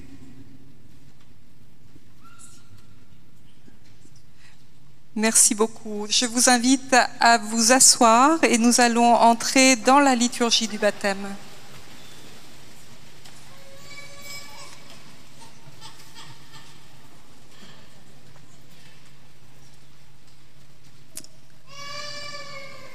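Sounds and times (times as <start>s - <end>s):
steady hum: 0.0s - 22.9s
speech: 5.2s - 11.5s
baby girl crying during a baptism service: 21.7s - 22.9s.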